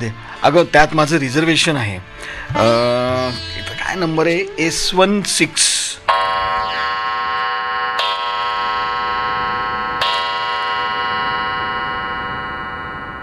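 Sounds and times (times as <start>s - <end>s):
speech: 0.0s - 6.0s
clock striking chimes: 6.1s - 13.2s.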